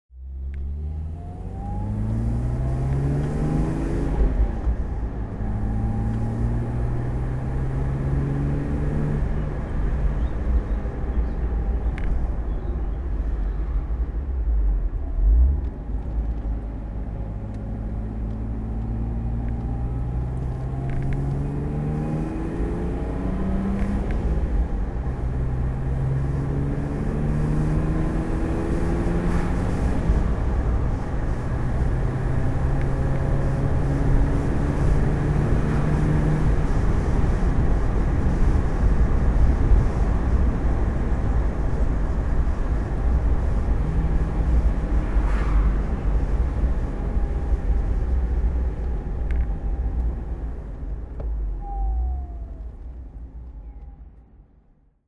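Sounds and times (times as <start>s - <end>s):
Mercedes 250SL Pagoda car driving: 0.1s - 55.0s.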